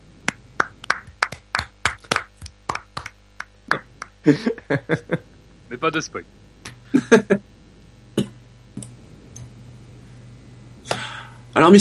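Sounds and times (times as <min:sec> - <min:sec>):
a few people applauding in a studio: 0:00.6 - 0:04.2
speech: 0:03.7 - 0:07.5, 0:11.6 - 0:11.7
laughter: 0:04.2 - 0:05.3, 0:06.9 - 0:07.4.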